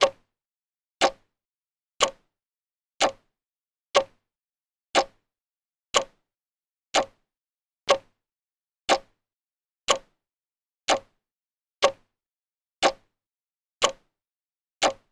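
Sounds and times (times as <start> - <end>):
clock ticking: 0.0 - 0.2, 1.0 - 1.2, 2.0 - 2.3, 3.0 - 3.3, 4.0 - 4.2, 5.0 - 5.2, 6.0 - 6.2, 7.0 - 7.2, 7.9 - 8.1, 8.9 - 9.2, 9.9 - 10.2, 10.9 - 11.2, 11.8 - 12.1, 12.8 - 13.1, 13.8 - 14.1, 14.8 - 15.1.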